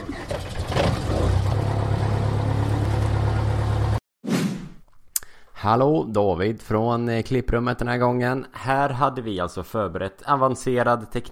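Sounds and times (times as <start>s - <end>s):
small airplane engine primed with a fuel pump starting up and running: 0.0s - 4.0s
speech: 5.6s - 11.3s.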